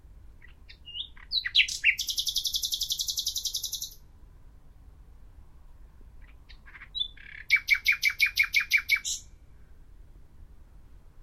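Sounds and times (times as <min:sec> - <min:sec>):
common nightingale Luscinia megarhynchos singing: 0:00.3 - 0:04.1, 0:06.1 - 0:09.5.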